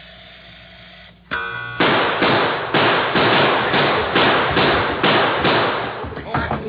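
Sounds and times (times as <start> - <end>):
brief ringing tone: 1.3 - 1.8
loud gunshots in a shootout: 1.8 - 6.1.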